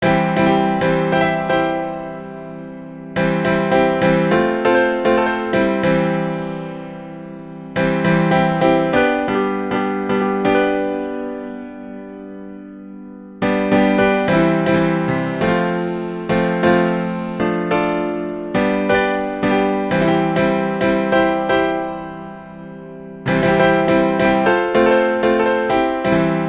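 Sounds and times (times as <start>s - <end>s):
piano lesson: 0.0s - 26.4s.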